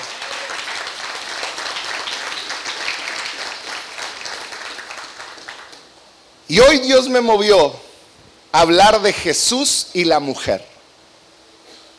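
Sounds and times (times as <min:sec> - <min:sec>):
audience applause: 0:00.0 - 0:05.8
speech: 0:06.5 - 0:07.8, 0:08.5 - 0:10.7.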